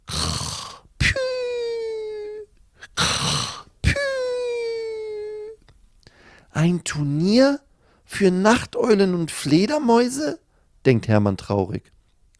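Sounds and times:
person imitating snoring with snort and whistling exhale: 0.0 - 5.4
speech: 6.6 - 12.0.

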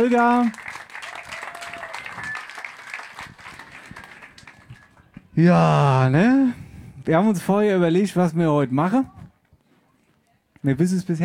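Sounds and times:
speech: 0.0 - 0.7, 5.4 - 9.2, 10.6 - 11.2
audience applause in a room: 0.0 - 5.2.

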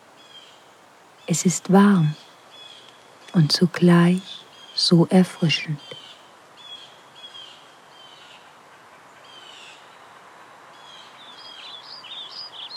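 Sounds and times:
soft birdsong in a forest: 0.1 - 5.0, 5.6 - 8.5, 9.2 - 10.1, 10.7 - 12.7
speech: 1.3 - 2.2, 3.3 - 6.0.

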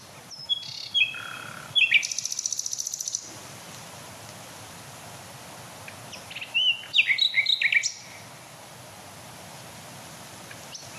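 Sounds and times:
common nightingale song with whistled notes and rattling trill: 0.0 - 3.5, 5.0 - 8.5, 10.4 - 10.9.

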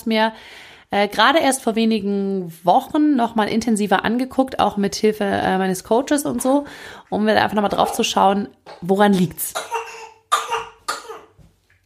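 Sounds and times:
speech: 0.0 - 9.8
harsh raspy coughs: 9.6 - 11.4.

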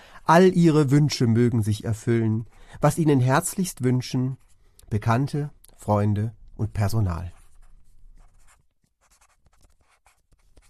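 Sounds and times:
speech: 0.3 - 7.4
pen scratching across paper in a notebook: 7.3 - 10.6.

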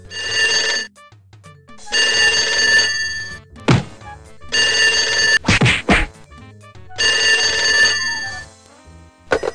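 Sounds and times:
telephone bell ringing: 0.0 - 0.9, 1.9 - 3.4, 4.5 - 5.4, 6.9 - 8.5, 9.3 - 9.5
sharp heavy thuds and whacks of a scuffle: 3.6 - 4.1, 5.4 - 6.2.

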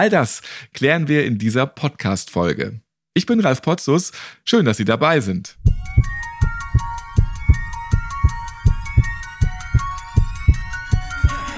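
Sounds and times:
speech: 0.0 - 6.2
heartbeat sound effect thumps: 5.6 - 11.5.

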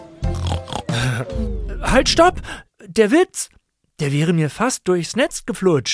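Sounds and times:
pig oinking and grunting: 0.2 - 2.6
speech: 1.3 - 5.9.

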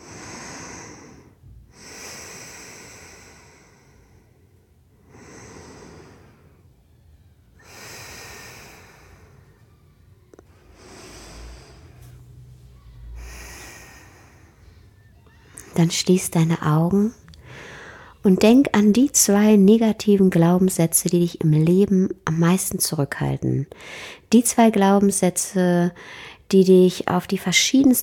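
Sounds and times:
deep slow breaths during a guided relaxation exercise: 0.0 - 15.8, 17.2 - 18.3, 23.7 - 24.3, 26.0 - 26.5
speech: 15.8 - 17.2, 18.2 - 28.0.

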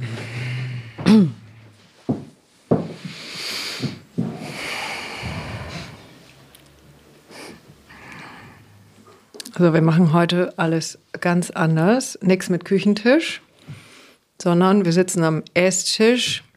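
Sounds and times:
live audience breathing in and out deeply together: 0.0 - 1.8, 3.0 - 6.6, 7.2 - 9.2
speech: 1.1 - 1.4, 9.6 - 13.8, 14.4 - 16.5.

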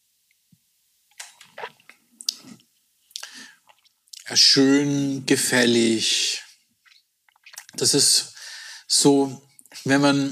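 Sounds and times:
sipping rum from a glass: 1.1 - 4.2, 6.8 - 7.8
speech: 4.4 - 6.4, 7.8 - 8.3, 8.9 - 10.3.

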